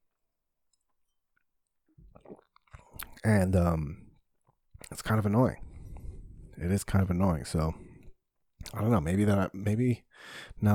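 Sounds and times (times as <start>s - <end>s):
person sipping wine from a glass: 2.0s - 3.2s
person swallowing wine: 2.0s - 3.2s
speech: 3.2s - 4.0s, 4.9s - 5.7s, 6.6s - 7.8s, 8.6s - 10.7s.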